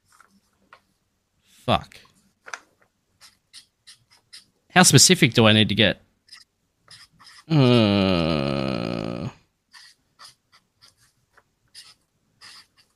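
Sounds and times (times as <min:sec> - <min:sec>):
speech: 0:01.7 - 0:02.1, 0:04.8 - 0:06.0, 0:07.5 - 0:08.4
pen scratching on paper: 0:03.2 - 0:04.5, 0:06.3 - 0:07.5, 0:09.7 - 0:12.9.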